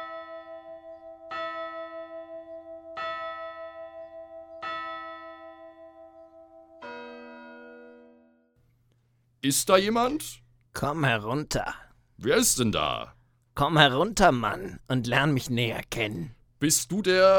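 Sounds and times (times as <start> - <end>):
large clock bell striking one o'clock: 0.0 - 8.3
speech: 9.4 - 17.3.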